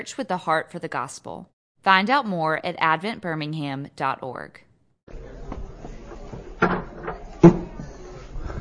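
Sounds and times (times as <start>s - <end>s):
speech: 0.0s - 4.6s
low murmur of room noise: 5.1s - 8.6s
wooden cabinet door of the ark in a cathedral church swinging shut: 6.6s - 7.7s.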